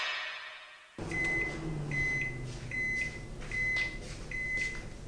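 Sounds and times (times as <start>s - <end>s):
microwave oven humming with a rising whir: 1.0s - 5.0s.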